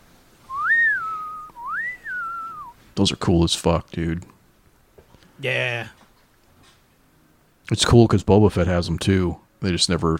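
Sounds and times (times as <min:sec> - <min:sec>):
person whistling imitation of a whistling-birds weapon: 0:00.5 - 0:02.8
speech: 0:03.0 - 0:04.4, 0:05.4 - 0:06.0, 0:07.7 - 0:10.1.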